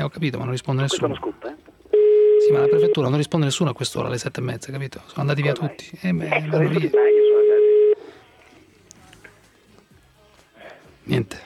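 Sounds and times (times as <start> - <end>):
speech: 0.0 - 1.5, 2.5 - 7.1, 11.1 - 11.4
telephone ringing: 1.9 - 3.2, 6.5 - 8.0.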